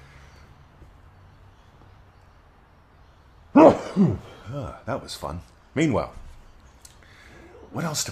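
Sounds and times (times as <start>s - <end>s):
sneeze: 3.6s - 4.4s
speech: 3.6s - 6.2s, 7.7s - 8.1s.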